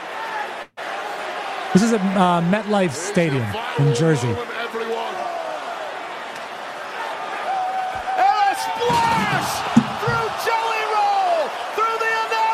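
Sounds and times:
stadium crowd roaring and whooping: 0.1s - 12.5s
speech: 1.7s - 5.2s
body smashing through a breakaway table: 8.8s - 10.4s.

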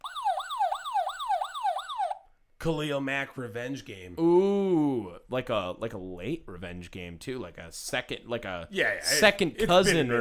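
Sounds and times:
siren sound effect wailing: 0.0s - 2.3s
speech: 2.6s - 10.2s.

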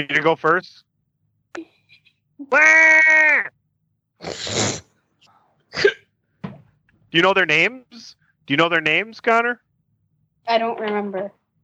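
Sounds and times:
speech: 0.0s - 0.9s, 1.5s - 1.7s, 2.4s - 3.6s, 4.2s - 4.8s, 5.7s - 6.0s, 7.1s - 9.6s, 10.5s - 11.4s
person imitating goat bleat: 2.4s - 3.5s
breathy sneeze-like bursts: 4.2s - 5.0s, 5.7s - 6.0s.

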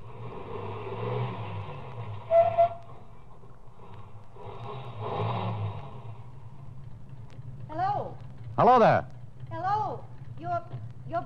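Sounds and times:
car engine rumbling as the car turns around and drives back: 0.0s - 11.2s
high squeal: 2.2s - 3.0s
speech: 8.6s - 9.1s.

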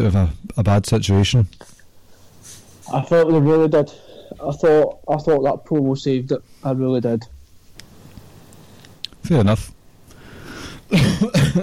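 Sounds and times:
speech: 0.0s - 1.8s, 2.9s - 7.3s, 9.2s - 9.7s, 10.9s - 11.6s
person with a cold coughing harshly: 10.9s - 11.6s.

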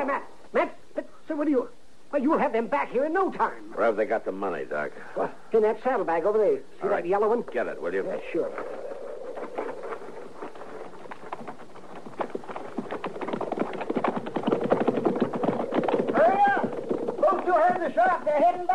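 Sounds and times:
speech: 0.0s - 8.8s
horse hooves clip-clopping as riders ride off: 8.5s - 18.7s.

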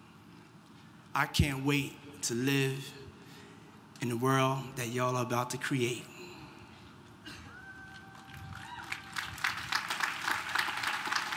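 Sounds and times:
speech: 1.2s - 3.0s, 4.0s - 6.2s
audience clapping: 7.8s - 11.3s.

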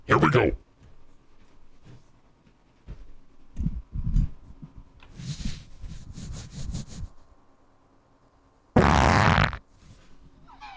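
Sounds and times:
speech: 0.3s - 0.6s
low sputtering farts: 8.8s - 9.6s.

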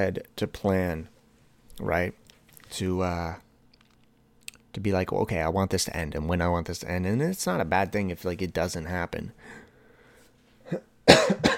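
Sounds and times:
speech: 0.0s - 1.1s, 1.8s - 3.4s, 4.7s - 9.6s, 10.7s - 11.4s
person coughing from a tickle in the throat: 10.6s - 11.5s.

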